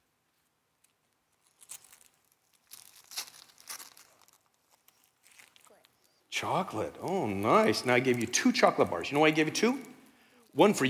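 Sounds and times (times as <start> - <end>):
gift wrapping paper being torn and crinkled open: 1.4 - 9.8
speech: 6.4 - 9.9, 10.6 - 10.8.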